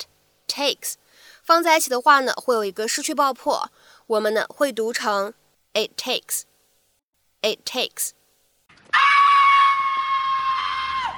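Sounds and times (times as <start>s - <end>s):
speech: 0.0s - 6.5s, 7.4s - 8.2s
shrill animal screech of a cat caught by coyotes: 8.9s - 11.1s.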